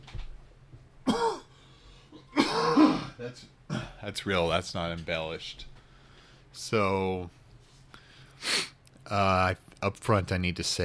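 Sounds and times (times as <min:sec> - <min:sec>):
phlegmy coughs from a person sick with strep throat: 0:01.0 - 0:01.5, 0:02.1 - 0:04.0
throat clearing: 0:02.2 - 0:04.0
speech: 0:03.2 - 0:05.7, 0:06.5 - 0:07.4, 0:09.1 - 0:10.8.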